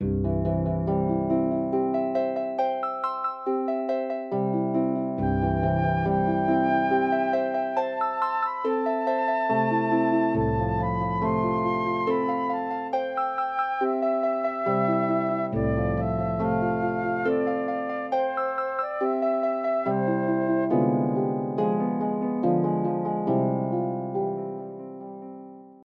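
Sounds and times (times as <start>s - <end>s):
harp: 0.0s - 25.3s
flute: 5.2s - 21.6s.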